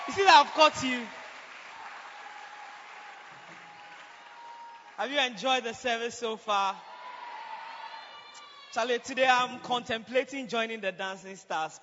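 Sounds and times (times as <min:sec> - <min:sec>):
crowd clapping: 0:00.0 - 0:05.8
speech: 0:00.1 - 0:01.2, 0:05.0 - 0:06.9, 0:08.7 - 0:11.8.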